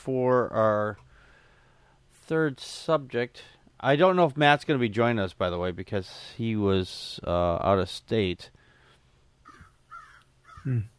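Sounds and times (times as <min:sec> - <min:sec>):
speech: 0:00.0 - 0:01.1, 0:02.3 - 0:08.6, 0:10.6 - 0:10.9
faint steady hum: 0:00.0 - 0:10.9
crow cawing: 0:09.4 - 0:10.8.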